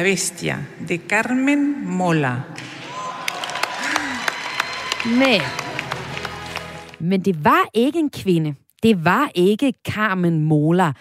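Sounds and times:
speech: 0.0s - 2.7s, 5.0s - 5.7s, 7.0s - 10.9s
audience clapping at a book prize ceremony: 2.6s - 7.0s.

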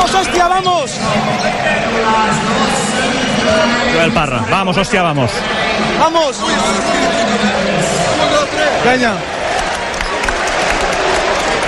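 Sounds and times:
speech: 0.2s - 9.4s
basketball players clapping for their home fans: 9.5s - 11.6s.

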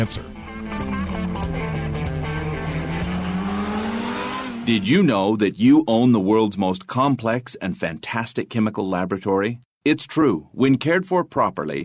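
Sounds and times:
speech: 0.0s - 0.9s, 4.7s - 11.8s
sports car engine roaring: 0.4s - 5.0s.

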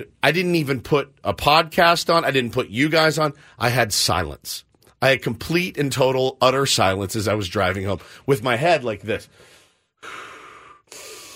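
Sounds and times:
speech: 0.0s - 10.3s
deep breathing through the nose: 9.3s - 11.3s.

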